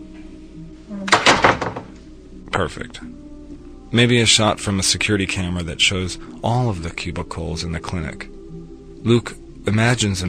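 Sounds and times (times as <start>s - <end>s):
hollow core door closing with a hollow thud: 1.1s - 2.0s
speech: 2.6s - 3.2s, 3.9s - 8.3s, 9.0s - 10.2s.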